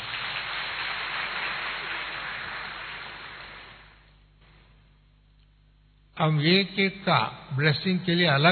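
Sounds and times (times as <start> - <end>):
audience applauding loudly: 0.0 - 4.0
speech: 6.2 - 8.4.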